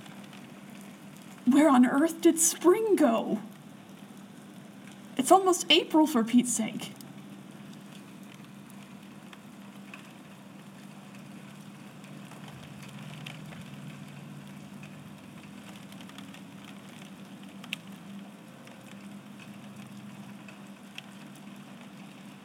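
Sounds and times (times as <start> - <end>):
freezing rain falling outdoors: 0.0 - 22.4
speech: 1.5 - 3.5, 5.2 - 7.0.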